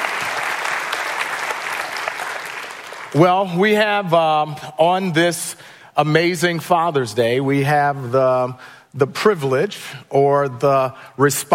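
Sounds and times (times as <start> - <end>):
large group clapping: 0.0 - 3.2
speech: 3.1 - 11.5.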